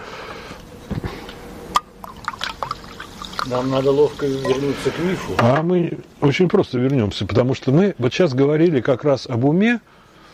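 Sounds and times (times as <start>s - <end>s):
low room hum: 0.0s - 10.3s
sipping and swallowing of water: 2.0s - 3.6s
speech: 3.5s - 10.0s.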